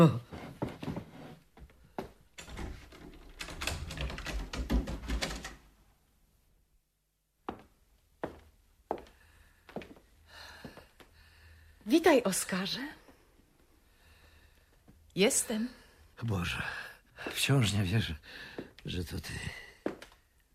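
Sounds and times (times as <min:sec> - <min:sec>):
speech: 0:00.0 - 0:00.2, 0:11.9 - 0:13.0, 0:15.2 - 0:19.6
apartment door being unlocked and opened: 0:02.3 - 0:05.6.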